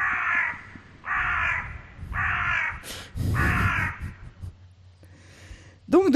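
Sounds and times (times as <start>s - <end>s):
crow cawing: 0.0s - 4.4s.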